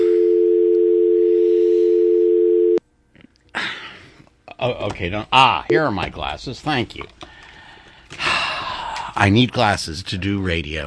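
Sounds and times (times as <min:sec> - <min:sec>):
telephone dial tone: 0:00.3 - 0:02.8
speech: 0:04.6 - 0:07.2, 0:09.2 - 0:10.8.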